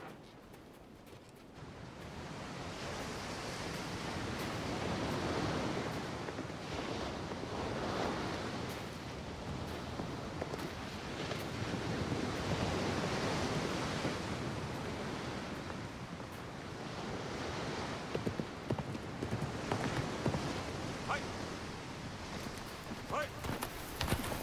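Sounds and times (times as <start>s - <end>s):
horse hooves clip-clopping: 0.0s - 24.4s
wind noise: 0.0s - 24.4s.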